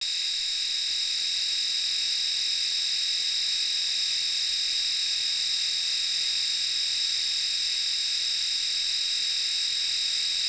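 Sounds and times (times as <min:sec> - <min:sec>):
Philips PowerTouch electric shaver: 0:00.0 - 0:10.4.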